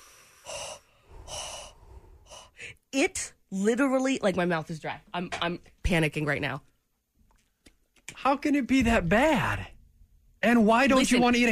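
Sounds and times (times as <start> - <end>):
deep breathing: 0.0 - 2.8
speech: 3.0 - 6.7, 8.2 - 9.7, 10.4 - 11.5.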